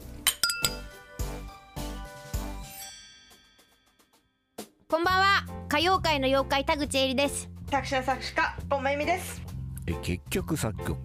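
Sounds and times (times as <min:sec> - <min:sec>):
beer glasses clinking in a toast: 0:00.2 - 0:01.2
speech: 0:04.9 - 0:11.0.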